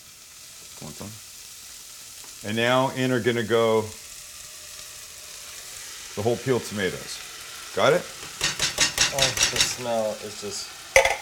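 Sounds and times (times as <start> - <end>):
onion and garlic sizzling in a soup pot for tomato soup: 0.0 - 11.1
speech: 0.8 - 1.2, 2.4 - 4.0, 6.2 - 8.4, 9.1 - 10.8.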